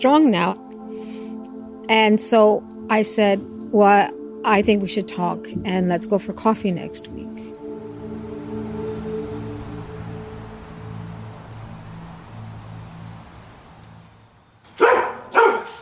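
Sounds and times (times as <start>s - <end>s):
speech: 0.0s - 0.6s, 1.9s - 7.6s
low steady hum: 0.0s - 14.4s
dog barking: 14.8s - 15.7s.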